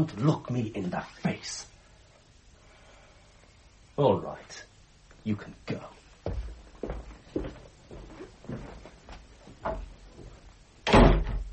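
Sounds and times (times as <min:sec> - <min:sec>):
speech: 0:00.0 - 0:01.7, 0:04.0 - 0:06.4
shuffling movement: 0:06.2 - 0:10.6
door slamming shut: 0:10.8 - 0:11.5.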